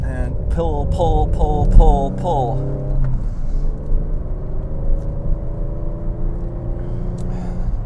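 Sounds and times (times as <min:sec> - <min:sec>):
Panamera car engine droning in four-wheel drift: 0:00.0 - 0:07.8
speech: 0:00.6 - 0:02.9.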